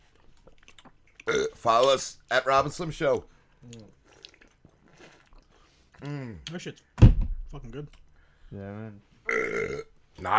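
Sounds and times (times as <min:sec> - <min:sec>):
wet chewing of a tough mouthful of jerky: 0:00.1 - 0:01.3, 0:03.5 - 0:06.1
speech: 0:01.6 - 0:04.0, 0:06.0 - 0:06.9, 0:07.5 - 0:10.3.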